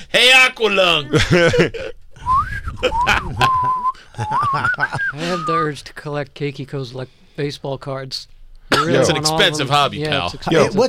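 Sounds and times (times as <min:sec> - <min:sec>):
speech: 0:00.1 - 0:02.0, 0:04.2 - 0:10.8
laughter: 0:01.1 - 0:02.0, 0:02.8 - 0:05.5
whistling breath through one nostril of a person breathing hard: 0:02.2 - 0:04.2, 0:05.0 - 0:05.6.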